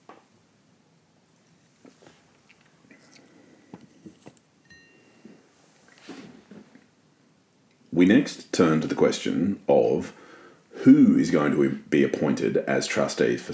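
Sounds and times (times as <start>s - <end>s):
person sipping a drink: 1.4s - 4.5s
speech: 8.0s - 10.2s, 10.8s - 13.5s.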